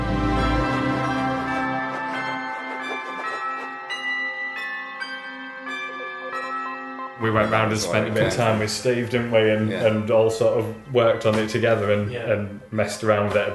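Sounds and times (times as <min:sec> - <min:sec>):
bells ringing in a piece of music: 0:00.0 - 0:09.2
speech: 0:07.2 - 0:13.5.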